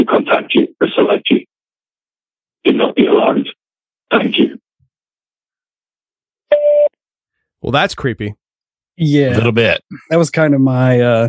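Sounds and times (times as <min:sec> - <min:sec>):
speech: 0:00.0 - 0:01.2, 0:02.6 - 0:04.6, 0:07.6 - 0:08.4, 0:09.0 - 0:11.2
steady electronic voicemail beep: 0:06.5 - 0:07.0.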